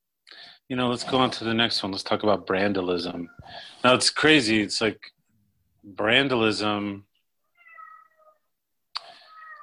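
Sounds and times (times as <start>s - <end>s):
speech: 0.7s - 5.2s, 5.8s - 7.1s
cat meowing: 7.5s - 8.5s, 9.2s - 9.6s.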